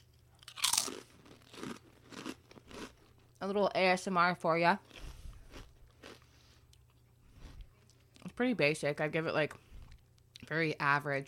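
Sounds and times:
soft rhythmic chewing crunches of a potato chip: 0.0 - 3.4, 4.8 - 8.3
crunch of biting into a potato chip: 0.4 - 3.2
speech: 3.4 - 5.0, 8.4 - 9.6, 10.5 - 11.2.

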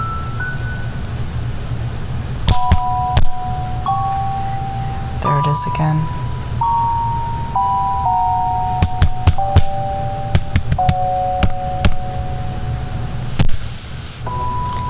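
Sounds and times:
steady droning hum: 0.0 - 14.8
slowly stepping electronic tone: 2.5 - 14.8
speech: 5.6 - 6.2
sharp rough taps on glass: 8.8 - 12.0.

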